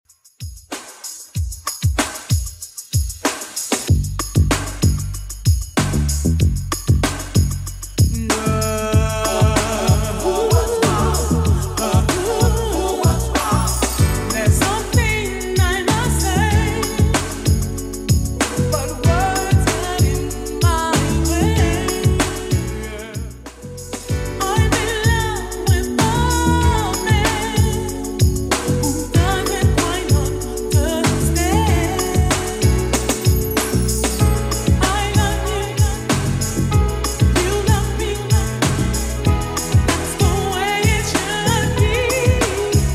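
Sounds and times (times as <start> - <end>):
80s drum machine beat at 95 BPM: 0.2 - 42.9.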